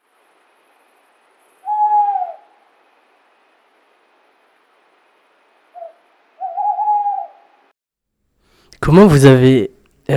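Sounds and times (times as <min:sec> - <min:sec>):
tawny owl hooting: 0:01.6 - 0:02.7, 0:05.7 - 0:07.6
speech: 0:08.8 - 0:10.1.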